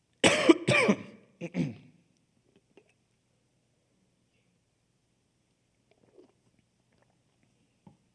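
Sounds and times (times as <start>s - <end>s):
person clearing throat with harsh coughs: 0.2s - 1.9s
faint soft mouth or swallowing sounds: 5.7s - 7.5s.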